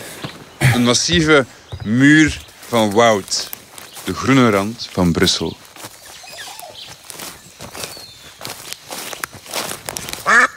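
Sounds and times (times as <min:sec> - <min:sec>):
footsteps rustling and crunching through forest undergrowth near Brussels: 0:00.0 - 0:10.5
speech: 0:00.8 - 0:03.4, 0:04.0 - 0:05.6
duck quacking: 0:10.2 - 0:10.5.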